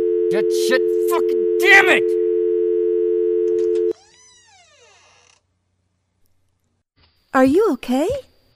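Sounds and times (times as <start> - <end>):
telephone dial tone after a dropped call: 0.0 - 3.9
speech: 0.3 - 2.2, 7.4 - 8.3.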